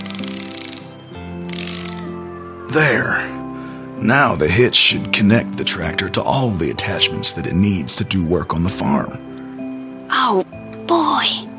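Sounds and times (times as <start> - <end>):
socket wrench ratcheting a loose nut and bolt under a tractor fender: 0.0 - 2.2
speech: 2.7 - 3.4, 4.0 - 9.3, 10.1 - 11.5.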